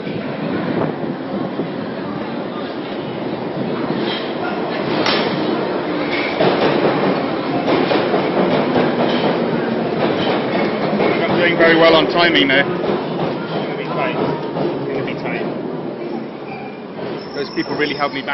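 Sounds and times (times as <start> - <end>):
underground train rumbling on rails heard from inside the carriage: 0.0 - 18.3
speech: 11.7 - 12.8, 17.6 - 18.3
metallic squeals of underground train: 16.0 - 18.3.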